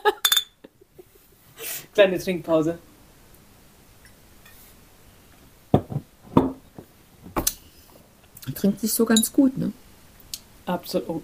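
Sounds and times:
glasses clinking in a toast: 0.2 - 0.6
speech: 2.0 - 2.9, 8.6 - 9.9, 10.7 - 11.2.

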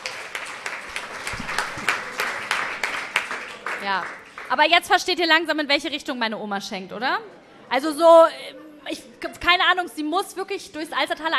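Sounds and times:
hand clapping: 0.0 - 4.6
speech: 3.8 - 11.3.

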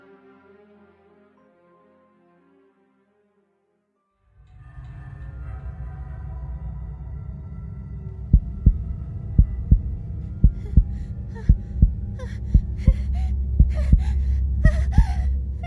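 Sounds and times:
heartbeat thumping in paired beats: 8.3 - 15.6
heavy ragged panicked breathing: 9.6 - 15.6.

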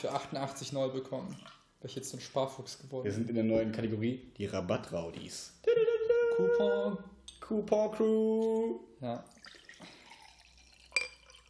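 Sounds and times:
speech: 0.0 - 5.8, 6.4 - 10.0
water dripping: 9.2 - 11.4.

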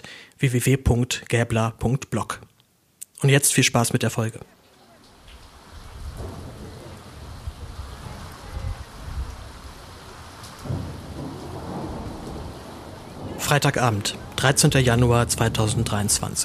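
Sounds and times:
speech: 0.4 - 2.5, 3.2 - 4.6, 13.5 - 16.4
heavy rain pouring on a meadow near Garzweiler open-pit mine in Germany: 4.8 - 16.4
low rumbles of thunder: 5.5 - 16.4.

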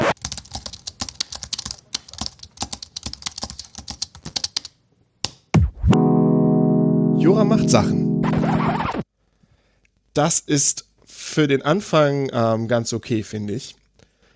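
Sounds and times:
hard typing on a computer keyboard: 0.2 - 4.8
sustained synthetic tones: 5.6 - 9.0
swooping electronic sweep: 5.6 - 9.0
speech: 7.4 - 9.0, 10.2 - 13.8.

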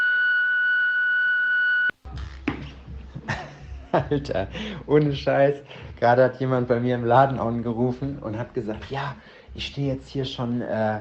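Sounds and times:
long steady electronic voicemail beep: 0.0 - 1.9
laughter: 2.6 - 4.8
speech: 3.9 - 10.9.

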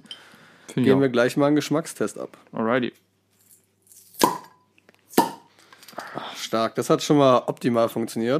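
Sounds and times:
speech: 0.8 - 3.0, 6.5 - 8.3
0.33-litre swing-top bottles of Kellerbier popping open: 4.1 - 6.0.

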